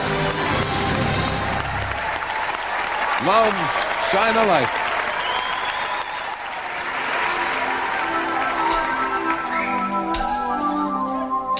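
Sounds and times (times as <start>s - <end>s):
large audience cheering and applauding for the winning act: 0.0s - 10.6s
speech: 3.2s - 4.8s.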